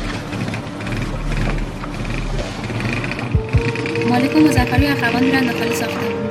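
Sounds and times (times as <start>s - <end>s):
motorcycle engines idling: 0.1s - 5.4s
speech: 4.2s - 6.2s.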